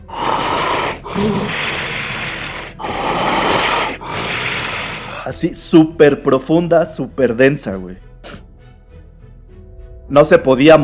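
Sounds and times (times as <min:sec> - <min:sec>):
voice imitating deep heavy breathing of something very large: 0:00.0 - 0:05.4
speech: 0:01.2 - 0:01.7, 0:05.3 - 0:08.1, 0:10.1 - 0:10.8.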